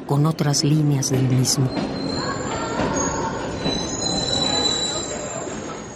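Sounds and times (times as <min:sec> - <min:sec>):
speech: 0:00.1 - 0:02.4
metro train carriages rolling in a metro station: 0:01.0 - 0:05.9
metro train wheels squealing in a metro station: 0:01.7 - 0:05.9.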